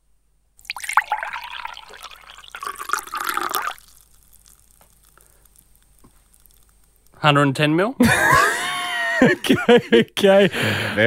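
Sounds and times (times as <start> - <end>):
liquid being poured into a container: 0.6 - 7.1
speech: 7.2 - 8.4, 9.2 - 11.0
laughter: 8.0 - 11.0.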